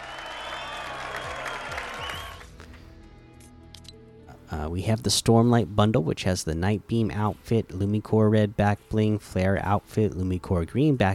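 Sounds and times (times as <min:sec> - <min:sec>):
loud crowd cheering and applauding: 0:00.0 - 0:02.7
speech: 0:04.5 - 0:11.1.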